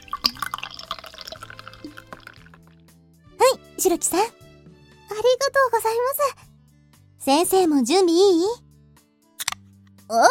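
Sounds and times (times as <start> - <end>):
non-alcoholic champagne-style sparkling drink poured into a glass: 0.0 - 2.8
speech: 3.8 - 4.4, 5.2 - 6.5, 7.2 - 8.6, 10.1 - 10.2.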